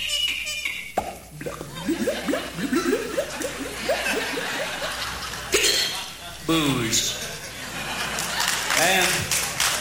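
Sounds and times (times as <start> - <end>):
performer's voice imitating liquid glugging from an uncorked bottle: 1.0 - 5.0
laughter: 1.5 - 6.1, 7.1 - 9.7
speech: 6.5 - 7.2.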